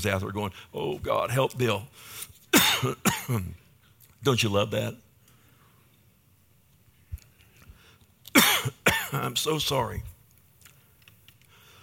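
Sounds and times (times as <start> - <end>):
speech: 0.0 - 3.6, 4.2 - 5.0, 8.6 - 10.1
person coughing from a morning allergy attack: 2.5 - 3.6, 8.3 - 9.3.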